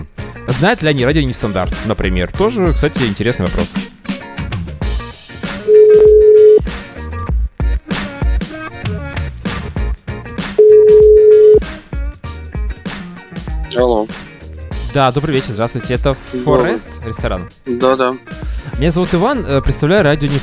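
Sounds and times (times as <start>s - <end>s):
busy music: 0.0s - 20.4s
speech: 0.5s - 3.8s, 15.0s - 20.4s
telephone ringback tone while placing a call to a restaurant in Saint Petersburg: 5.7s - 6.6s, 10.6s - 11.6s.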